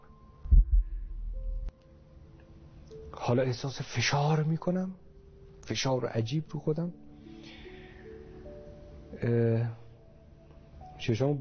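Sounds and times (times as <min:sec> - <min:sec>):
deep heartbeat: 0:00.4 - 0:01.7
low sustained throbbing rumble: 0:00.4 - 0:01.7
speech: 0:03.1 - 0:05.0, 0:05.7 - 0:07.0, 0:09.2 - 0:09.8, 0:11.0 - 0:11.4.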